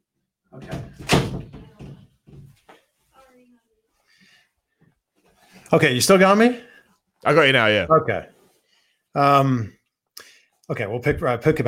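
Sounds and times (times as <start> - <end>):
door swinging and shutting with a thud: 0.6 - 2.5
soft knocks and rustles as things settle: 0.6 - 3.2
speech: 5.7 - 8.3, 9.2 - 9.8, 10.7 - 11.6.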